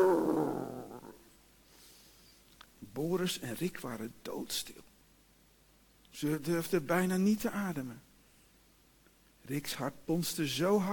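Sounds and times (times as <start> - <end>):
dog on a chain growling: 0.0 - 1.2
speech: 3.0 - 4.9, 6.1 - 8.1, 9.4 - 10.9.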